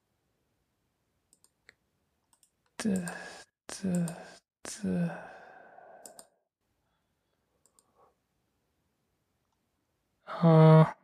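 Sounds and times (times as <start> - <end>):
mouse clicks closing browser tabs: 1.3 - 4.4, 6.0 - 6.3, 7.6 - 7.9
speech: 2.8 - 5.3, 10.4 - 11.0
soft breathy sigh: 3.0 - 6.2, 10.3 - 11.0.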